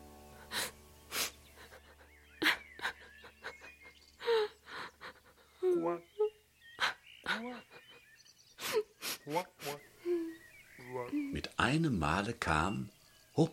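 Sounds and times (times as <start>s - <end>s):
girl sobbing and crying with gasping breaths and quavering wails: 0.4s - 8.0s, 8.6s - 9.3s, 10.0s - 10.4s
speech: 5.8s - 6.1s, 9.3s - 9.9s, 11.3s - 13.5s.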